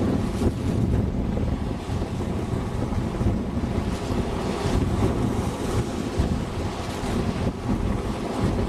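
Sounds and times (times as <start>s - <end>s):
gusty wind buffeting the microphone: 0.0s - 8.6s
rushing surf washing up on shore: 0.0s - 8.6s.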